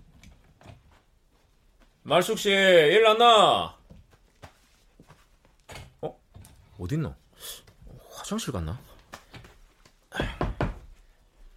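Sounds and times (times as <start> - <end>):
speech: 2.1 - 3.8, 6.8 - 7.6, 8.3 - 8.9
knocking on a door: 10.2 - 10.9.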